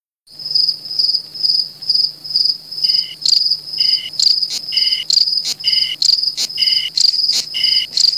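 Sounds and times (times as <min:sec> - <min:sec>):
cicada pulsing buzzing drone: 0:02.3 - 0:08.1
sharp cicada clicking accents: 0:03.2 - 0:08.1.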